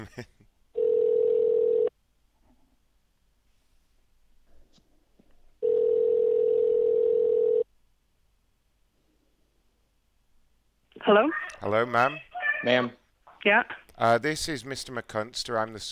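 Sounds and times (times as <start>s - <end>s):
speech: 0.0s - 0.4s, 11.1s - 15.9s
telephone dial tone: 0.8s - 1.9s, 5.6s - 7.6s.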